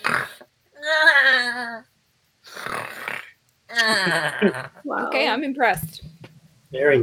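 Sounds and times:
person imitating loud goat-like snoring of someone inside a cabin: 0.0s - 1.6s, 2.4s - 4.8s
speech: 4.1s - 6.1s, 6.7s - 7.0s.

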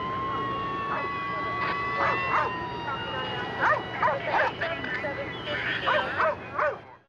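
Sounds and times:
faint high whine: 0.0s - 6.7s
steady hum: 0.0s - 7.0s
police dog barking: 2.0s - 2.6s, 3.6s - 4.6s, 5.9s - 6.8s.

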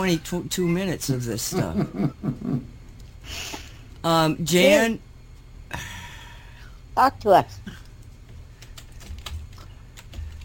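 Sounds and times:
speech: 0.0s - 5.1s, 5.7s - 5.9s, 7.0s - 7.8s
low hum: 0.0s - 10.4s
laughter: 1.5s - 2.7s
woman typing on a computer keyboard during a video call: 8.3s - 10.4s.

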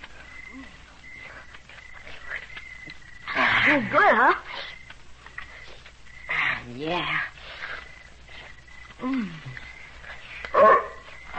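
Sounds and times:
speech: 3.7s - 4.7s, 6.7s - 7.3s, 9.0s - 9.6s
dog barking: 10.5s - 11.1s.

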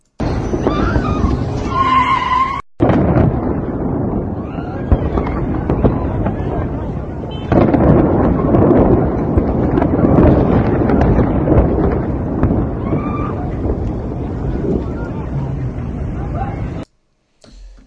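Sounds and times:
deep explosions rumbling underground in the Bagheri township area: 0.0s - 16.9s
faint voices: 4.3s - 9.2s, 12.6s - 16.9s.

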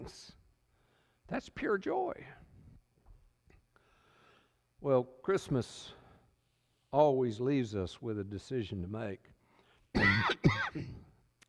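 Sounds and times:
speech: 1.3s - 2.5s, 4.8s - 6.0s, 6.9s - 9.3s, 10.0s - 11.0s
preacher coughing during a Christmas sermon: 10.0s - 11.1s.

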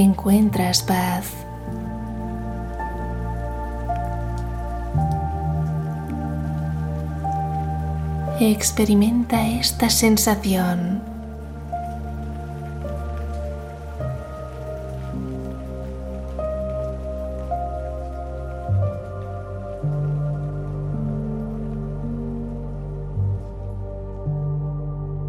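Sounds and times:
speech: 0.0s - 1.8s, 8.4s - 11.1s
rain falling and dripping: 0.0s - 25.2s.

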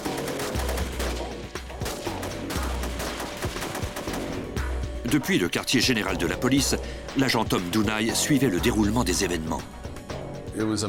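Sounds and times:
gunfire from a shootout between robbers and a police SWAT sniper on a city street: 0.0s - 4.8s
speech: 5.1s - 9.8s, 10.6s - 10.8s.

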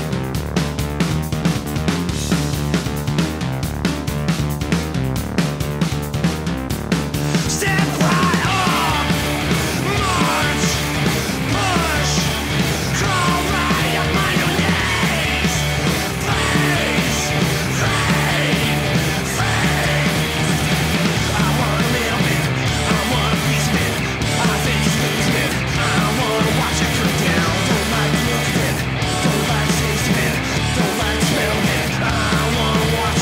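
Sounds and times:
band playing a rock cover version: 0.0s - 33.2s
pounding drums: 0.0s - 33.2s
harsh yelled vocals: 7.2s - 33.2s.

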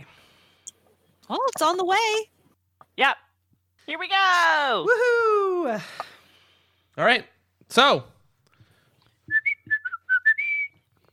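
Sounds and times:
speech: 1.3s - 2.4s, 3.0s - 3.2s, 3.9s - 6.1s, 7.0s - 8.1s
people whistling a short teleportation signal tune: 9.3s - 10.9s.

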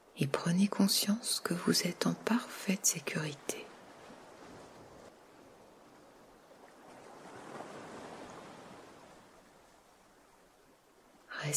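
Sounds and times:
sea waves washing in surf: 0.0s - 11.5s
speech: 0.2s - 3.7s.

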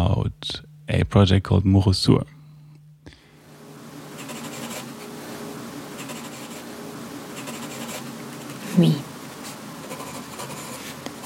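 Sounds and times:
speech: 0.0s - 2.4s, 8.8s - 9.1s
pen scratching on paper: 4.2s - 4.9s, 6.0s - 6.6s, 7.4s - 8.7s, 9.8s - 11.2s.

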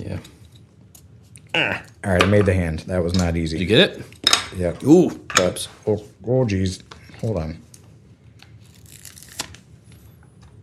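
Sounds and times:
speech: 0.0s - 0.4s, 1.5s - 7.6s
stickers peeled from a sheet while building a Lego set: 8.4s - 9.6s.

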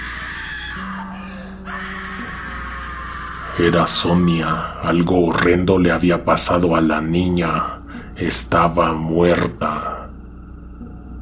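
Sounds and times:
person screaming in the street: 0.0s - 4.8s
speech: 3.6s - 9.9s.

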